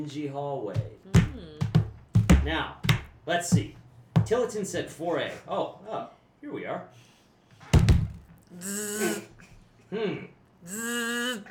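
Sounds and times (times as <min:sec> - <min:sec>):
speech: 0:00.0 - 0:01.6, 0:02.4 - 0:07.1, 0:08.5 - 0:11.4
person's drawn-out murmuring vocal sounds: 0:00.8 - 0:01.8, 0:08.5 - 0:09.4, 0:10.0 - 0:11.4
heavy knocks on an apartment door in an old apartment building: 0:00.8 - 0:04.4, 0:07.7 - 0:08.3.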